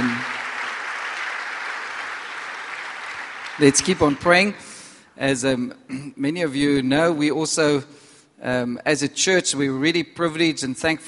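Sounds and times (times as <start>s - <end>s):
audience applause in a church: 0.0s - 4.8s
speech: 3.6s - 11.0s.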